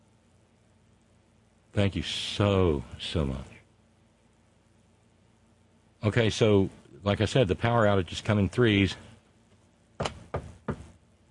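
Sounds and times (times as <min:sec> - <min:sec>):
speech: 0:01.7 - 0:03.5, 0:06.0 - 0:09.1
knocking on wood: 0:10.0 - 0:11.0.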